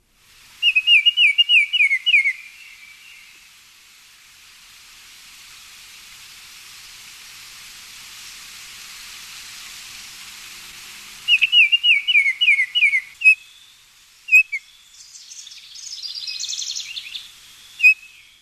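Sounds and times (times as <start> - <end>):
steady hiss: 0.0 - 18.3
Baltimore Oriole song of clear whistled notes: 0.6 - 3.3, 11.3 - 18.3.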